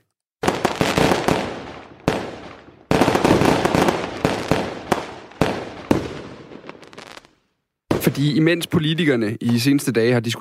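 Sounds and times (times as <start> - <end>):
New Year's Eve fireworks exploding in cracks and booms: 0.4 - 8.7
speech: 8.1 - 10.3.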